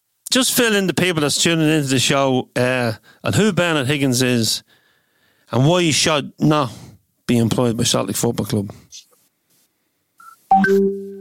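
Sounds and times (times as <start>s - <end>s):
speech: 0.4s - 4.8s, 5.5s - 9.0s, 10.6s - 11.0s
soft hiss bursts: 8.9s - 10.4s
mobile phone message tone chirping: 10.2s - 11.1s.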